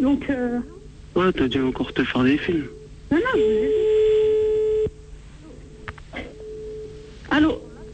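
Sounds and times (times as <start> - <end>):
speech: 0.0 - 4.0
telephone line tone as a call is placed: 2.7 - 5.0, 5.7 - 7.9.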